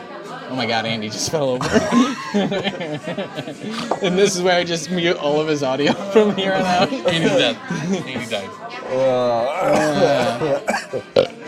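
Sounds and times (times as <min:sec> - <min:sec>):
speech: 0:00.5 - 0:11.4
laughter: 0:01.4 - 0:11.4
long belch after drinking beer: 0:09.0 - 0:11.4.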